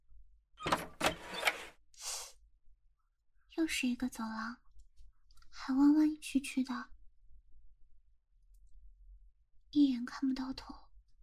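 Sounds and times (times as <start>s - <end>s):
door creaking open: 0.6s - 1.8s
speech: 3.6s - 4.6s, 5.7s - 6.9s, 9.7s - 10.8s.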